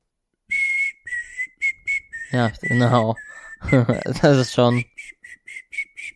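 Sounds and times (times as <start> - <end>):
whistled tune: 0.5 - 6.1
speech: 2.3 - 5.1
laughter: 2.7 - 4.8.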